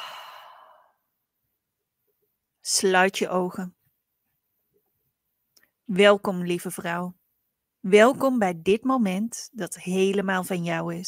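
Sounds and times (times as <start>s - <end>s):
breathing out through the mouth during a guided breathing exercise: 0.0s - 0.9s
speech: 2.7s - 3.8s, 5.9s - 7.2s, 7.8s - 11.0s.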